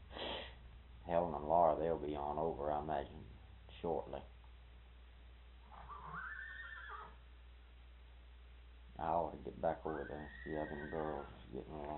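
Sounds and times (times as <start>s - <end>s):
low steady hum: 0.0s - 11.9s
speech: 1.1s - 4.4s, 9.0s - 11.9s
fresh horse whinnying: 5.6s - 7.2s, 9.9s - 11.4s.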